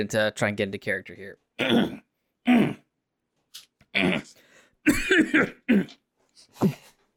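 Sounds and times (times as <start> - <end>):
speech: 0.0 - 2.8, 4.0 - 6.0, 6.6 - 6.8
person coughing: 1.6 - 2.8, 4.0 - 6.0
person clearing throat: 1.6 - 2.9, 3.9 - 6.0.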